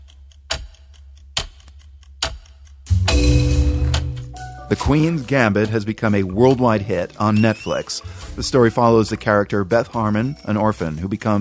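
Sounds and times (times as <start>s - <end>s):
sharp loud chess clock clacks: 0.0s - 4.3s
chess clock ticking: 0.0s - 6.2s
speech: 4.7s - 11.3s.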